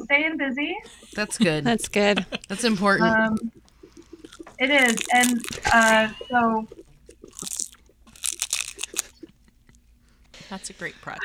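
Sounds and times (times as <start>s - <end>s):
speech: 0.1s - 3.6s, 4.6s - 6.8s, 10.5s - 11.2s
crunchy seaweed snack being bitten and chewed: 3.4s - 9.8s.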